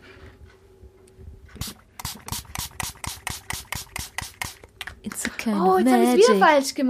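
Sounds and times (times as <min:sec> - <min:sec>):
spray bottle of vinegar cleaner squirting onto water spots in a kitchen: 0:01.6 - 0:04.7
speech: 0:05.4 - 0:06.8.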